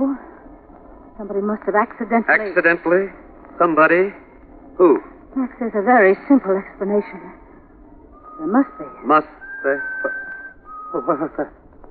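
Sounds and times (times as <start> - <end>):
speech: 1.2 - 4.2, 4.8 - 7.4, 8.4 - 10.2, 10.9 - 11.6
eerie unnatural high whistle: 8.0 - 11.5.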